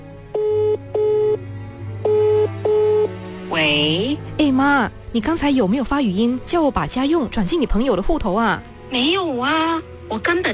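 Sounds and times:
telephone dialing tones as a call is placed: 0.4s - 1.4s, 2.0s - 3.2s
speech: 3.7s - 10.5s.

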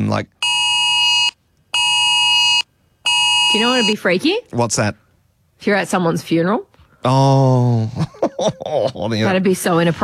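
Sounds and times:
speech: 0.0s - 0.4s, 3.6s - 5.0s, 5.6s - 10.0s
phone emergency alert tone: 0.4s - 4.0s.

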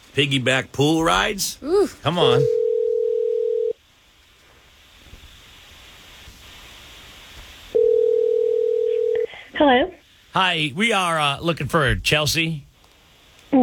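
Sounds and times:
faint hiss: 0.0s - 13.6s
speech: 0.2s - 2.6s, 9.6s - 12.7s
low electronic telephone tone: 2.4s - 3.8s, 7.8s - 9.3s.

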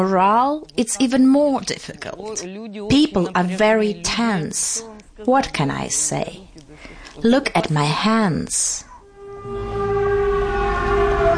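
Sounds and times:
speech: 0.0s - 9.7s
air raid siren warning of a drone at a port in Ukraine: 8.9s - 11.3s
low rumble: 9.0s - 11.3s.

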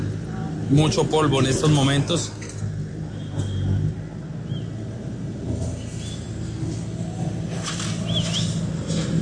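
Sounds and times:
heavy car engine revving as a car is pulled out of rubble: 0.0s - 9.2s
speech: 0.7s - 2.5s.

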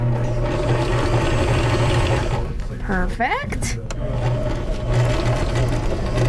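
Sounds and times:
sewing machine whirring at a summer sewing camp: 0.0s - 2.8s, 3.8s - 6.2s
speech: 3.2s - 4.3s.

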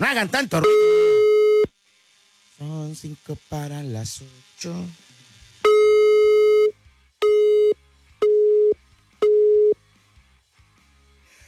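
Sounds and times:
speech: 0.1s - 0.9s, 2.6s - 5.0s
telephone busy tone after a call is hung up: 5.6s - 9.8s.

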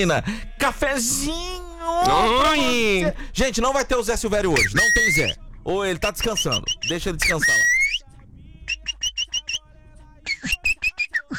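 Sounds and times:
speech: 0.0s - 7.7s
sabiá thrush singing clear whistled notes: 4.6s - 5.4s, 6.1s - 8.1s, 8.7s - 9.7s, 10.3s - 11.3s.

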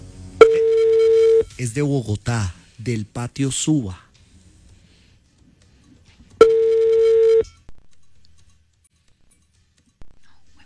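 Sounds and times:
outgoing phone call low beep ringing tone: 0.4s - 1.6s, 6.4s - 7.6s
speech: 1.6s - 4.0s.

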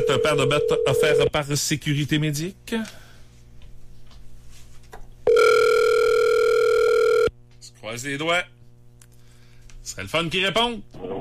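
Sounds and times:
steady electronic telephone ring tone on a line: 0.0s - 1.3s, 5.3s - 7.3s
speech: 0.1s - 3.0s, 7.8s - 8.6s, 9.8s - 11.2s.

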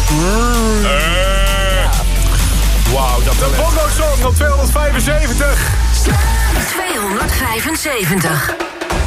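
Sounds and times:
person imitating a cow mooing: 0.0s - 2.1s
speech: 3.4s - 8.9s.

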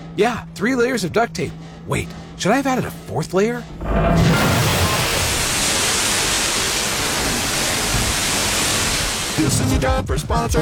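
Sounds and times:
speech: 0.2s - 4.4s, 9.4s - 10.6s
water gushing from a burst water main under heavy pressure: 4.1s - 9.7s.

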